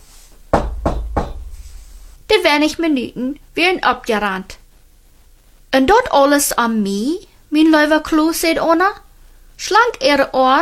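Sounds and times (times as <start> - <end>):
teacher knocking: 0.5 - 2.2
speech: 2.4 - 4.6, 5.7 - 9.0, 9.6 - 10.5.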